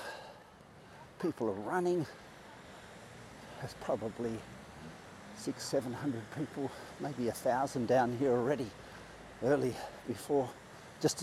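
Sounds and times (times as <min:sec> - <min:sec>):
light breeze: 0:00.0 - 0:11.2
small waves lapping on a beach: 0:00.0 - 0:11.2
speech: 0:01.2 - 0:02.3, 0:03.6 - 0:04.6, 0:05.4 - 0:11.2.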